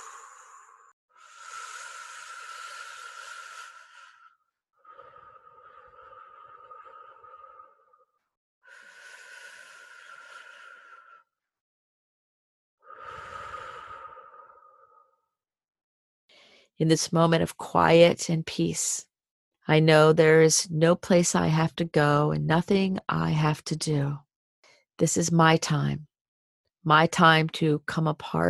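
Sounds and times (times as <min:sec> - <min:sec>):
slow breaths during a guided breathing exercise: 0:00.0 - 0:11.4, 0:12.8 - 0:15.3
speech: 0:16.8 - 0:19.1, 0:19.7 - 0:24.2, 0:25.0 - 0:26.1, 0:26.8 - 0:28.4.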